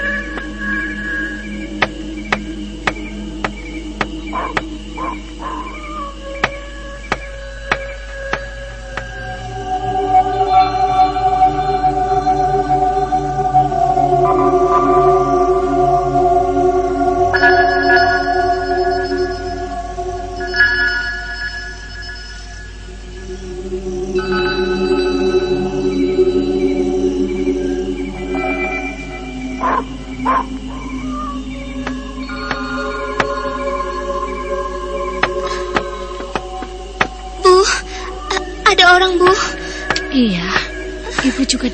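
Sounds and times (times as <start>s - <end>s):
wolves howling: 0.0s - 21.3s, 22.5s - 41.7s
faint tapping: 1.8s - 4.7s, 6.4s - 9.2s, 35.2s - 37.2s.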